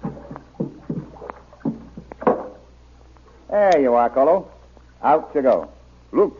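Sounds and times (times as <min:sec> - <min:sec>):
water splashing and sloshing as a small canoe glides up to a dock: 0:00.0 - 0:03.5
speech: 0:03.5 - 0:06.3.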